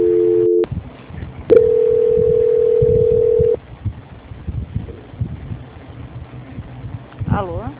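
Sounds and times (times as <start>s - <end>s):
telephone transfer tone as a call is passed to a quality-control department: 0.0s - 0.7s, 1.5s - 3.6s.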